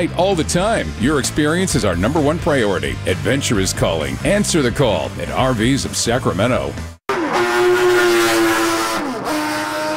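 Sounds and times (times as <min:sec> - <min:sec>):
speech: 0:00.0 - 0:06.9
racing motorcycle engines at a speedway race: 0:00.0 - 0:09.9.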